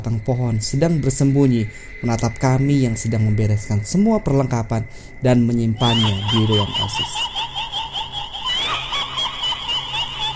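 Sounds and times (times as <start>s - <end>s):
speech: 0.0s - 7.5s
high-pitched eerie ghostly female giggling sound effect: 5.8s - 10.3s.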